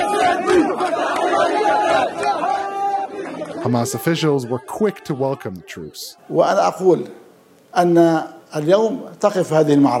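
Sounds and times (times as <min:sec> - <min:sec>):
thousands of people shouting and cheering outdoors at street celebrations: 0:00.0 - 0:06.8
speech: 0:03.7 - 0:09.9.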